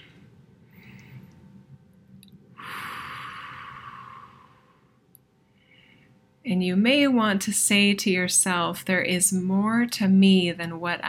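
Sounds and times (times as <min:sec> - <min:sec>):
slow deep breath during a guided relaxation exercise: 0:00.0 - 0:01.4, 0:02.6 - 0:06.2
speech: 0:06.5 - 0:11.0.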